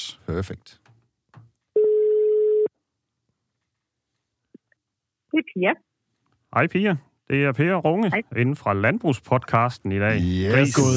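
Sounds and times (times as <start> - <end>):
speech: 0.1 - 0.9, 5.3 - 5.9, 6.5 - 10.9
telephone ringing tone of a call to a swine veterinarian: 1.8 - 2.7.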